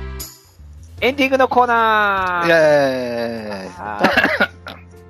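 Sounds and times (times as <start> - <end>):
speech: 1.1 - 4.5
laughter: 2.5 - 4.8
fit of harsh coughs: 3.4 - 4.9.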